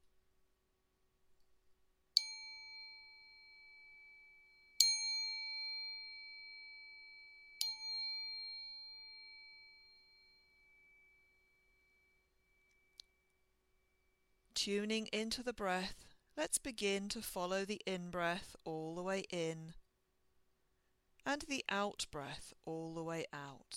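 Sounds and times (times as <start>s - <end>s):
meditation chime ringing: 2.2s - 14.4s
speech: 14.6s - 19.8s, 21.2s - 23.7s.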